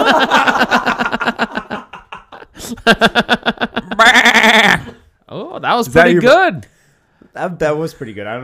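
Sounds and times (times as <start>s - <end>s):
laughter: 0.0s - 5.0s
speech: 2.9s - 3.4s, 5.8s - 6.7s, 7.4s - 8.4s
person imitating sheep with loud quavering bleats: 4.0s - 5.0s.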